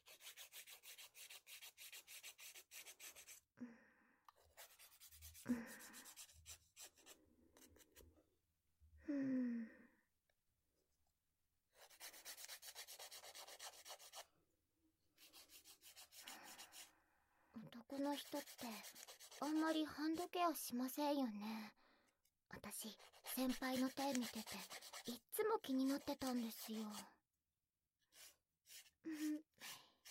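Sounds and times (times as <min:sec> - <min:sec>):
fingernails being filed with a nail file: 0:00.0 - 0:03.4, 0:04.5 - 0:08.0, 0:11.8 - 0:14.3, 0:15.2 - 0:16.9, 0:17.9 - 0:19.8, 0:22.9 - 0:27.0, 0:28.1 - 0:30.0
speech: 0:05.4 - 0:05.9, 0:18.1 - 0:21.8, 0:22.8 - 0:27.2.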